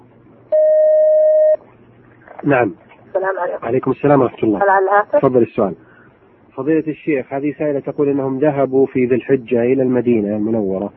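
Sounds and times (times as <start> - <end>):
faint low hum: 0.0 - 10.9
telephone beep as a call is connected: 0.5 - 1.6
speech: 2.4 - 5.9, 6.6 - 10.9.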